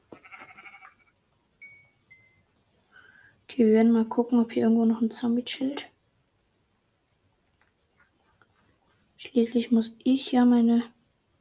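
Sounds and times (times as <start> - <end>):
sheep bleating: 0.2 - 1.0
speech: 3.5 - 5.9, 9.3 - 11.0.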